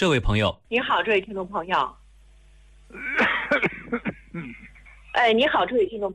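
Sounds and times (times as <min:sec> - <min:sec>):
speech: 0:00.0 - 0:02.0, 0:02.9 - 0:06.1
person coughing: 0:02.9 - 0:04.7
person clearing throat: 0:02.9 - 0:04.8.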